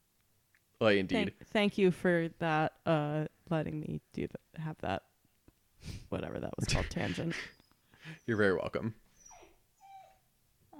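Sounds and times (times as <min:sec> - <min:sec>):
speech: 0:00.8 - 0:05.1, 0:05.8 - 0:09.0
dog whining: 0:07.4 - 0:10.3.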